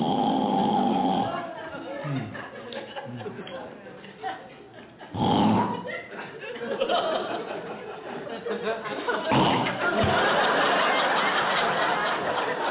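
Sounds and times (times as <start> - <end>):
voice imitating a wife's loud raspy snoring in bed: 0.0 - 2.4, 5.1 - 5.8, 9.3 - 9.8
laughter: 1.2 - 12.6.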